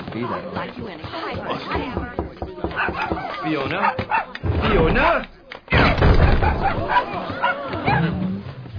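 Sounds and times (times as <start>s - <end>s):
speech: 0.2s - 5.8s, 6.5s - 8.2s
puppy barking and yipping: 2.7s - 4.3s, 6.4s - 8.1s.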